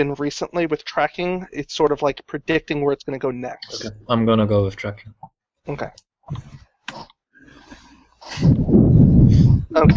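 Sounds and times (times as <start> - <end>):
speech: 0.0 - 7.1, 8.3 - 9.9
breathing directly into a microphone: 7.4 - 9.8.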